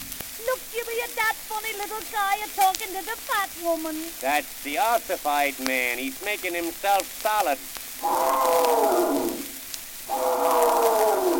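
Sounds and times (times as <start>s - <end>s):
speech: 1.0s - 9.2s
little circus elephant trumpeting: 8.0s - 11.3s.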